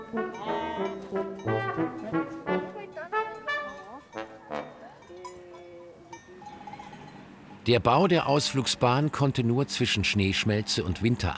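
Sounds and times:
Valais Blacknose sheep bleating: 0:00.3 - 0:01.1
faint clank of a bell: 0:02.9 - 0:07.6
speech: 0:07.7 - 0:11.3.

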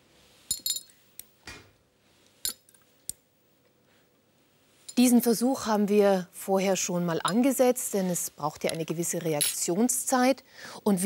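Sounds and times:
glass clinking against glass or metal: 0:00.5 - 0:01.0, 0:02.4 - 0:02.8
speech: 0:05.0 - 0:11.0.

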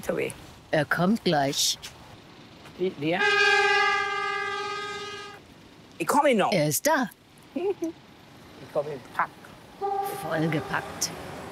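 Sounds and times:
speech: 0:00.0 - 0:02.0, 0:02.8 - 0:03.5, 0:06.0 - 0:08.0, 0:08.6 - 0:09.4, 0:10.2 - 0:11.3
train horn blaring: 0:03.1 - 0:05.4, 0:09.8 - 0:11.4.

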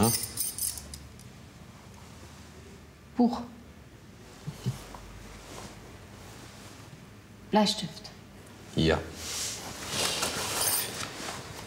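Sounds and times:
bright metallic jingles: 0:00.0 - 0:01.0, 0:10.5 - 0:11.0
low steady room hum: 0:00.0 - 0:11.6
speech: 0:03.2 - 0:03.6, 0:07.5 - 0:08.1, 0:08.8 - 0:09.4.

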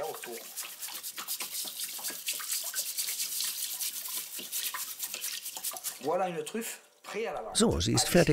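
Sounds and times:
brush scrubbing earth off truffles under running water: 0:00.0 - 0:06.5
running water: 0:00.0 - 0:06.8
speech: 0:06.0 - 0:08.3.

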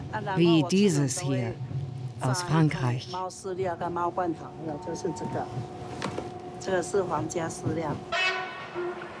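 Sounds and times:
train travelling from Taipei to Houdong rumbling: 0:00.0 - 0:09.1
speech: 0:00.1 - 0:05.9, 0:06.6 - 0:08.2
train horn: 0:08.0 - 0:09.1.

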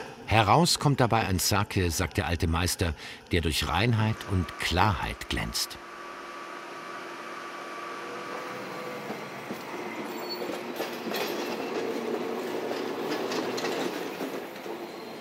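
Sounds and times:
speech: 0:00.3 - 0:05.9
trains running on stacked rail lines near a main station: 0:08.4 - 0:15.1
train wheels clickety-clack on track: 0:08.8 - 0:15.1.

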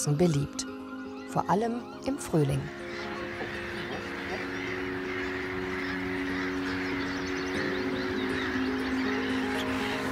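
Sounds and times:
speech: 0:00.0 - 0:00.7, 0:01.3 - 0:03.1
chorus of many waterbirds calling: 0:00.0 - 0:10.1.

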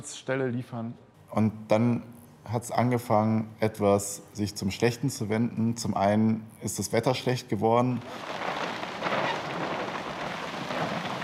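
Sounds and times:
speech: 0:00.0 - 0:09.2
steady dense rainfall in bad weather: 0:08.0 - 0:11.2.

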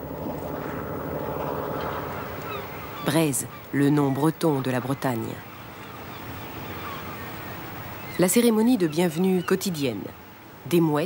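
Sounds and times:
fishing boat engine drone returning to the port of Loctudy: 0:00.0 - 0:06.1
speech: 0:03.1 - 0:05.5, 0:08.2 - 0:11.0.

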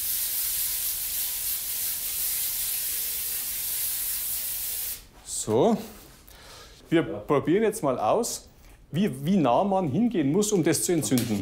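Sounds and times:
flammable liquid sprayed from a nozzle for an ignition test: 0:00.0 - 0:05.0
speech: 0:05.4 - 0:06.0, 0:06.9 - 0:11.4.

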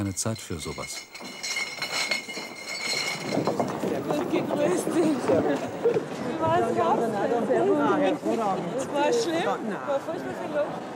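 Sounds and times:
speech: 0:00.0 - 0:01.6, 0:04.3 - 0:10.9
beer glasses clinking while being stacked away in a beer tent: 0:00.0 - 0:05.9
low clatter in a beer tent: 0:00.0 - 0:07.1.

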